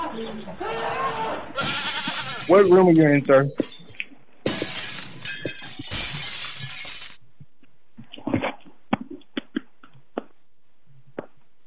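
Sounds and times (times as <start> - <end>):
speech: 0.2 - 1.8, 2.5 - 3.7
goat bleating in a shaky wavering cry: 1.6 - 2.5.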